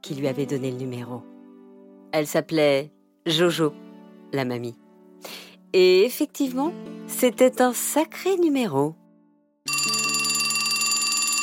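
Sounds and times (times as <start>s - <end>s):
speech: 0.0s - 1.3s, 2.1s - 9.0s
telephone bright steady electronic ring: 9.7s - 11.4s.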